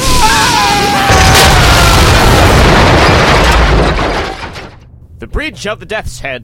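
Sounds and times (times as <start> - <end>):
crackling debris and rumble: 0.0 - 5.8
cannon exploding with a deep boom: 1.1 - 5.2
speech: 5.4 - 6.4.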